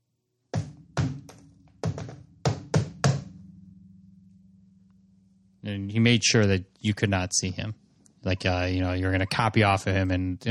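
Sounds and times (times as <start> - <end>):
man knocking a secret knock on a wooden door: 0.6 - 3.3
speech: 5.7 - 10.4.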